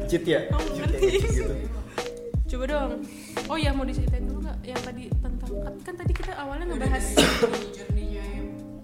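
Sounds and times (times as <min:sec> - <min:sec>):
speech: 0:00.1 - 0:01.8, 0:02.5 - 0:08.3
laughter: 0:00.6 - 0:02.0
person coughing: 0:07.1 - 0:07.7.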